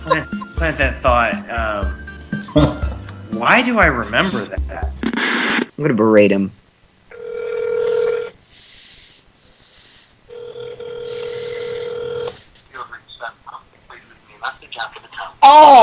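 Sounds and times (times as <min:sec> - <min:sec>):
voicemail voice speaking: 0:00.0 - 0:00.9, 0:12.7 - 0:15.4
speech: 0:00.0 - 0:02.0, 0:02.6 - 0:02.8, 0:03.4 - 0:04.9, 0:05.8 - 0:06.6
telephone call ringing: 0:07.1 - 0:08.4, 0:10.3 - 0:12.3.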